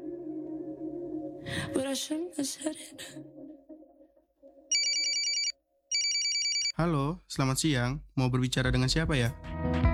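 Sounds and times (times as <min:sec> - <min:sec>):
speech: 0:01.4 - 0:03.4, 0:06.8 - 0:09.9
telephone bell ringing in rapid high trills: 0:04.7 - 0:06.8.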